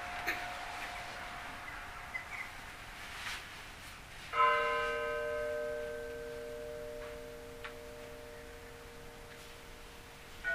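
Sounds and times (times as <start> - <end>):
church bells ringing for a procession in Rostov: 0.0 - 2.7, 4.3 - 10.5.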